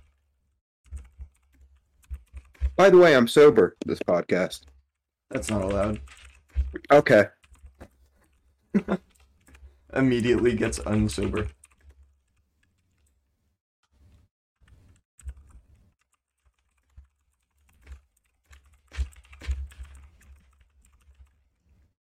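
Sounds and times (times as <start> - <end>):
typing on a computer keyboard while writing a short text: 0.8 - 2.8, 4.6 - 7.9, 9.0 - 13.2, 14.6 - 21.7
speech: 2.8 - 4.7, 5.3 - 7.4, 8.7 - 9.1, 9.9 - 11.6.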